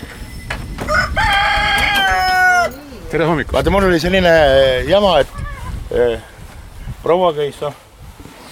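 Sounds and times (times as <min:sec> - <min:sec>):
rooster crowing in a chicken coop: 0:00.8 - 0:02.8
speech: 0:03.1 - 0:06.3, 0:07.0 - 0:07.8.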